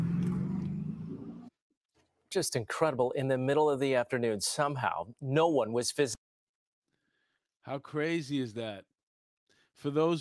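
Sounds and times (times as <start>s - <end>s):
car engine roaring as the car speeds away: 0.0s - 1.5s
speech: 2.3s - 6.2s, 7.6s - 8.9s, 9.8s - 10.1s.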